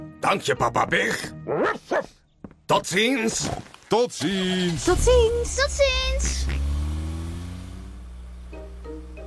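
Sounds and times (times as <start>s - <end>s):
speech: 0.2s - 6.6s
car engine starting and revving: 4.3s - 9.2s.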